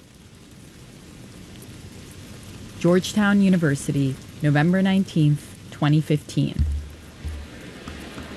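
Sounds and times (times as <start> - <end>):
heavy rain pouring at a university: 0.0 - 8.3
speech: 2.8 - 6.6
low rumble: 6.6 - 7.8.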